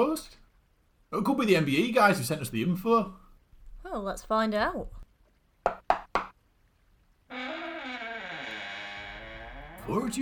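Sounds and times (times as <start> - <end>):
speech: 0.0 - 0.4, 1.1 - 3.2, 3.8 - 5.0, 9.9 - 10.1
sharp knocks on a door: 5.6 - 6.3.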